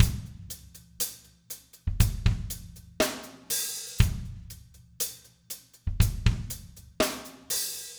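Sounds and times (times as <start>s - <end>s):
slow pop rock ballad drum beat: 0.0s - 7.9s.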